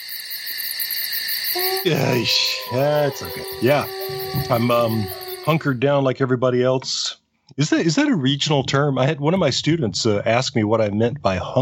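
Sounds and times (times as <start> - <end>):
chorus of crickets chirping: 0.0 - 5.8
speech: 1.5 - 11.6.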